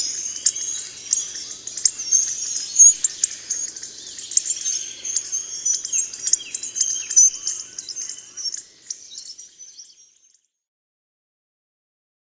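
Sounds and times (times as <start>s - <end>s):
hawfinch calls: 0.0s - 9.5s.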